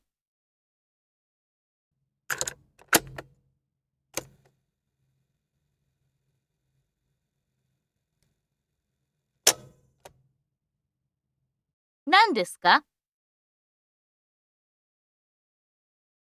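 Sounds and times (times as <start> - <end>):
tape recorder buttons clunking: 2.3 - 3.2, 9.5 - 9.7
speech: 12.1 - 12.9.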